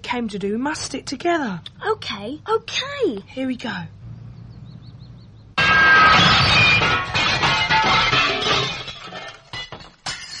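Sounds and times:
speech: 0.0s - 4.0s
falling glass shards tinkling and clattering: 5.6s - 10.3s
stone crashing through a school glass window: 5.6s - 10.3s.

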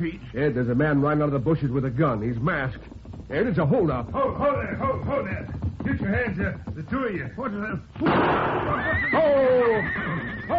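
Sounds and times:
speech: 0.0s - 10.5s
horse neighing: 8.5s - 10.5s.

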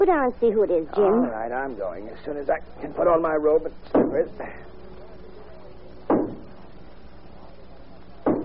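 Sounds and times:
speech: 0.0s - 4.8s
knocking at a door: 6.1s - 6.5s, 8.2s - 8.4s.

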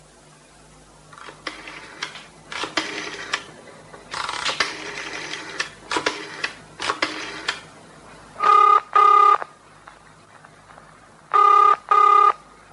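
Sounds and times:
buzzing telephone ring tones while calling the police: 8.4s - 9.5s, 11.3s - 12.4s.

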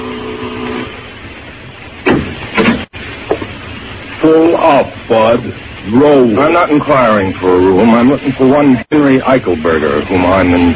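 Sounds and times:
doorbell buzzing ring: 0.0s - 1.1s
thumps and rattles: 2.0s - 3.6s
speech: 4.6s - 10.7s.

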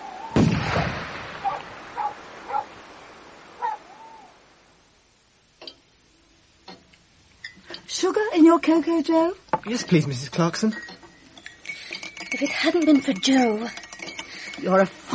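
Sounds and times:
shotgun fired at thieves from a window: 0.4s - 2.4s
speech: 8.0s - 11.0s, 12.4s - 13.8s, 14.6s - 15.1s.

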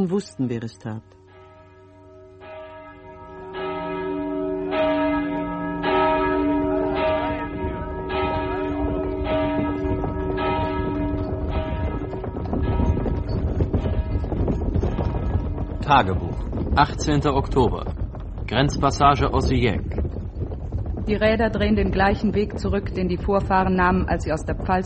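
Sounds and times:
speech: 0.0s - 1.2s, 15.9s - 17.9s, 18.5s - 19.9s, 21.1s - 24.8s
church bells ringing a peal: 0.0s - 16.0s
wind rumble: 1.3s - 24.8s.

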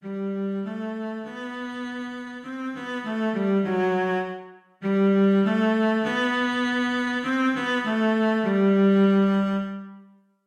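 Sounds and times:
cello playing a sight reading exercise: 0.0s - 10.1s.

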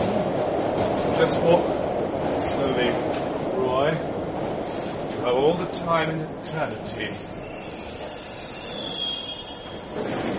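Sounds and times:
London Underground train rumbling into a station: 0.0s - 10.3s
speech: 1.2s - 1.8s, 2.4s - 4.2s, 5.2s - 7.3s
faint high metallic squeal from train wheels: 7.4s - 9.7s.

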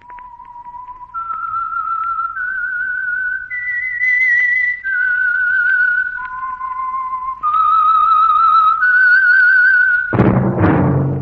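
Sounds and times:
lone whistled theme tune melody: 0.0s - 10.2s
burst of orchestral music: 10.1s - 11.2s.

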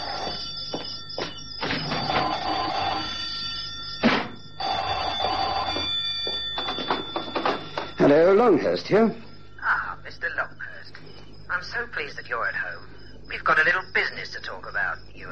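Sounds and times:
old-fashioned telephone bell ringing: 0.0s - 12.0s
speech: 8.1s - 9.3s, 11.8s - 15.2s.

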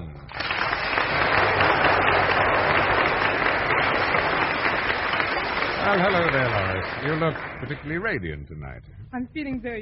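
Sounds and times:
large audience applause: 0.3s - 8.1s
speech: 5.9s - 9.8s.

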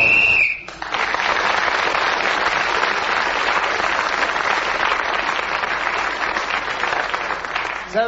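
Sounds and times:
short shrill whistle blast signalling time up: 0.0s - 0.7s
loud sustained audience applause: 0.0s - 8.0s.

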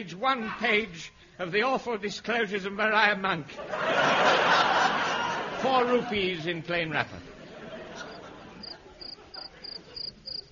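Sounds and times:
speech: 0.0s - 4.9s, 5.6s - 7.3s
laughter: 3.6s - 10.4s
cricket chirping at night: 8.1s - 10.5s.

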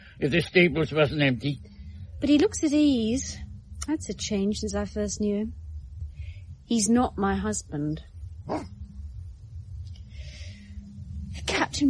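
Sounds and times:
low ambient rumble: 0.0s - 11.8s
speech: 0.2s - 5.6s, 6.7s - 8.8s
dog bark: 8.4s - 8.9s.

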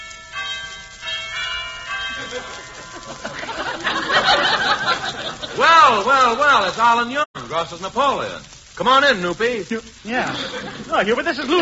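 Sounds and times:
doorbell chiming: 0.0s - 4.9s
mingled voices: 2.0s - 11.6s
audience laughter: 2.1s - 6.0s, 10.2s - 11.6s
speech: 2.2s - 11.6s.

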